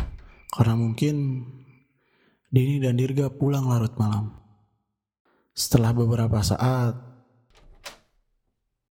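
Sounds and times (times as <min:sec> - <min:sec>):
door opening with a mechanical rattle and whoosh: 0:00.0 - 0:00.6, 0:07.5 - 0:08.2
speech: 0:00.6 - 0:01.6, 0:02.5 - 0:04.4, 0:05.6 - 0:07.1.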